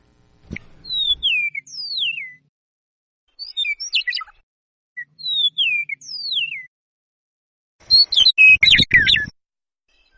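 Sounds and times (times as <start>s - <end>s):
Eastern Meadowlark singing slurred descending whistles: 0.8s - 2.5s, 3.3s - 4.4s, 5.0s - 6.7s, 7.8s - 10.1s.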